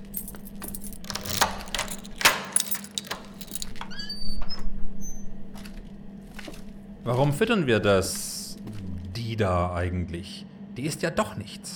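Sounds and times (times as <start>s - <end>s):
bunch of keys jangling as pulled out: 0.0s - 4.0s
speech: 7.1s - 8.3s, 9.4s - 11.7s.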